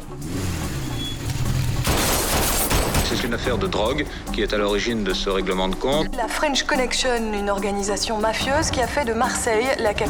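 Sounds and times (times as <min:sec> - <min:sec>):
car engine rumble in a film car chase: 0:00.0 - 0:02.4
speech: 0:00.1 - 0:00.4, 0:03.1 - 0:10.0.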